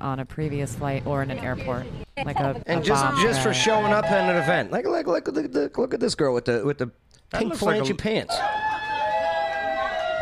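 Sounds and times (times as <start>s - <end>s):
speech: 0.0s - 8.6s
people yelling and whooping: 2.8s - 4.7s, 8.3s - 10.2s
crowd cheering: 2.8s - 4.8s, 8.3s - 10.2s.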